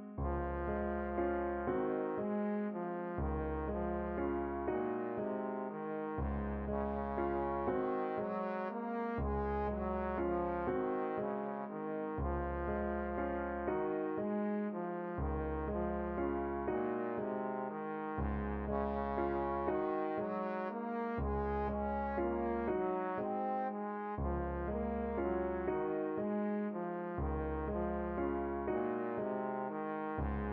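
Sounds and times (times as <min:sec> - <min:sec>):
trombone playing a berceuse: 0:00.2 - 0:30.4.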